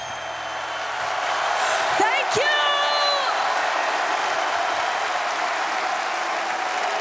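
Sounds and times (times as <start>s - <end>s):
shrill rising whistle or whoop from the audience: 0.0s - 1.2s
large audience at a performance cheering and applauding: 0.0s - 6.9s.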